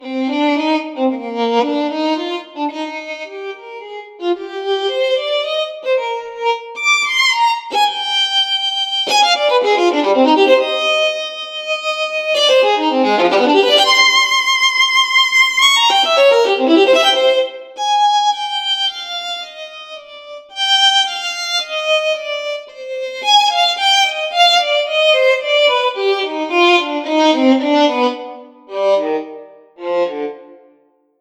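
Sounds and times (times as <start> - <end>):
dynamic classical violin piece: 0.0 - 30.9.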